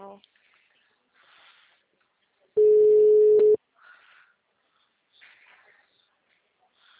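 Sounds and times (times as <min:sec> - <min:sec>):
telephone ringing tone while a call is placed: 0:02.6 - 0:03.6.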